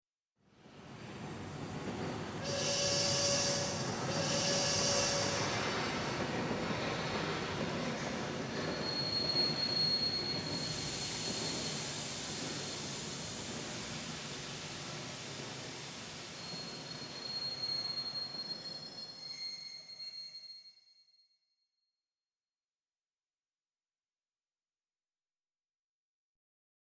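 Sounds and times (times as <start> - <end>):
train arriving: 0.7 - 20.2.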